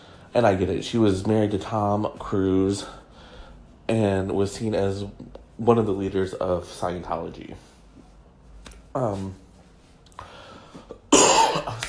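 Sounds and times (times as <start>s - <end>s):
speech: 0.4s - 3.0s, 3.9s - 7.7s, 9.0s - 9.4s
person coughing harshly: 10.9s - 11.8s.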